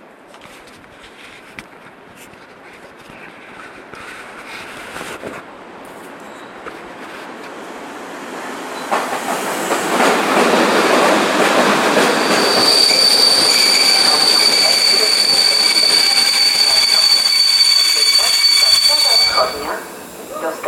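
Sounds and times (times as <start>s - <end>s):
train pulling in at a platform track in Kraków: 0.0s - 20.6s
train wheel squeal: 12.0s - 19.7s.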